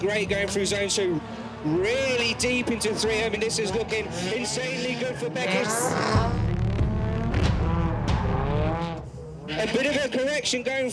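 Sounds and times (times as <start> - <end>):
speech: 0.0 - 6.4, 9.6 - 10.9
drift car engine roaring and accelerating hard on a qualifying run: 1.2 - 10.6
hissy tire noise of a drift car: 2.8 - 10.3.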